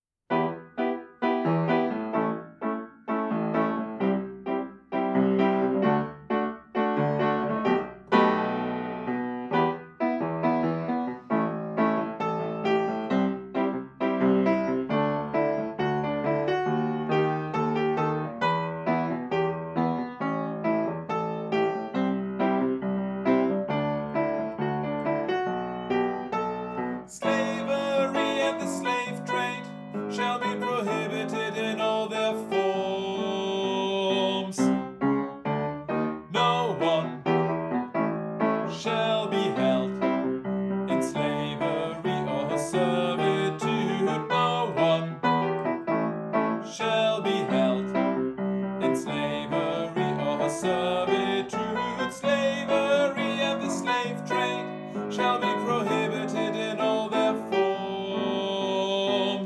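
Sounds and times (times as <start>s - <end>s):
piano: 0.0s - 59.4s.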